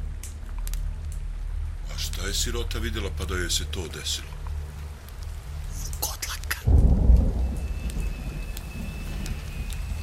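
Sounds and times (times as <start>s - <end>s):
heavy rain: 0.0s - 10.0s
speech: 2.3s - 4.4s
deep rumbling thunder: 6.7s - 10.0s.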